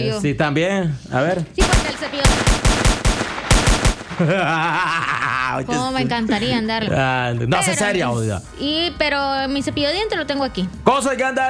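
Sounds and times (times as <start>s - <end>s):
speech: 0.0s - 2.4s, 4.2s - 11.4s
burst of gunfire: 1.6s - 4.7s
laughter: 4.1s - 7.5s.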